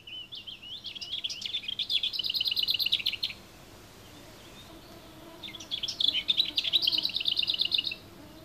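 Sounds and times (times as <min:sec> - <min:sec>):
lesser whitethroat singing: 0:00.0 - 0:08.4.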